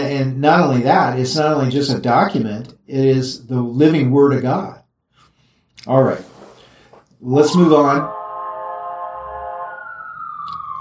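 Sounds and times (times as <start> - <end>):
speech: 0.1 - 4.8, 5.8 - 6.3, 7.2 - 8.2
emergency vehicle siren passing by: 7.2 - 10.7.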